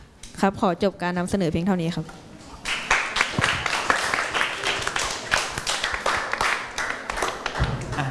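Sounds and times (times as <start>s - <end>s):
speech: 0.4s - 2.3s
classmates applauding in a classroom: 2.6s - 8.0s.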